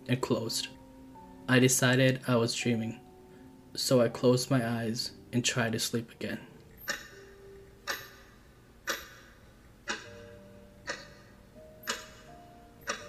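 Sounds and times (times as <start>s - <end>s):
speech: 0.1s - 0.8s, 1.5s - 3.0s, 3.7s - 7.0s
watch ticking: 6.7s - 13.0s.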